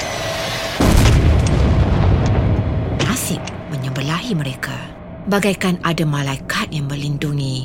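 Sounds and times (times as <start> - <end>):
explosion of falling mortar shells and grenades: 0.1 - 3.2
heavy sustained rumbling: 0.1 - 7.6
speech: 4.3 - 7.6.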